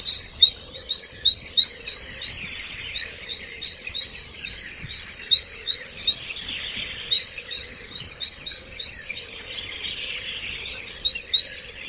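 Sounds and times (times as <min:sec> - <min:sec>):
birds giving rapid high thin chirps at ancient Roman baths in Rome: 0:00.0 - 0:11.8.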